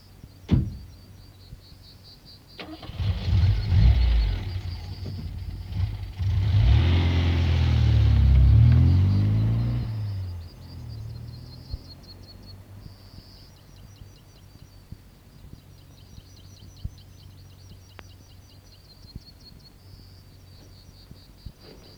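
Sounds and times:
car engine starting and driving away: 2.6 - 13.3.

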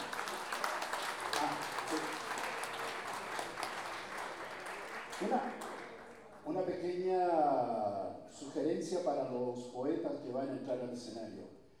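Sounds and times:
audience applause at a live folk poetry duel event: 0.0 - 6.5
speech: 5.2 - 5.6, 6.5 - 11.6.

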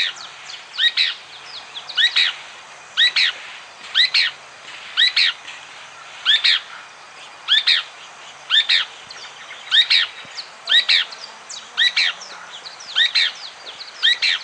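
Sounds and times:
pale-breasted spinetail occipitalis singing: 0.0 - 14.4.

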